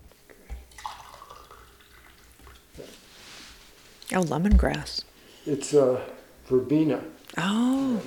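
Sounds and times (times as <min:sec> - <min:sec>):
drips and clinks: 0:00.6 - 0:02.7
lemon verbena tea pouring into a cup: 0:00.6 - 0:02.8
speech: 0:04.1 - 0:08.0.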